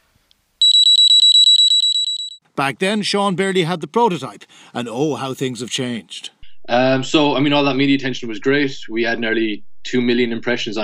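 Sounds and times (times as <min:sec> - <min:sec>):
shrill electronic overheat alarm from a device's built-in battery monitor: 0:00.6 - 0:02.4
speech: 0:02.6 - 0:10.8.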